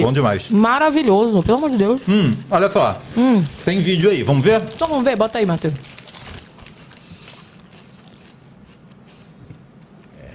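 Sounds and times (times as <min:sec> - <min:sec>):
speech: 0:00.0 - 0:05.9
person chewing crunchy Cheetos: 0:01.3 - 0:10.2.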